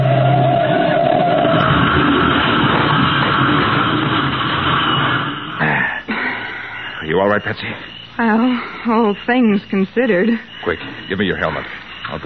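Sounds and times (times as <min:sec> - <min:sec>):
car engine revving: 0:00.0 - 0:05.6
speech: 0:07.2 - 0:12.2.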